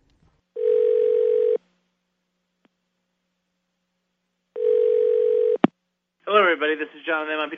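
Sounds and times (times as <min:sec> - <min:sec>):
buzzy telephone line tones: 0:00.6 - 0:01.6, 0:04.6 - 0:05.6
speech: 0:06.6 - 0:07.5.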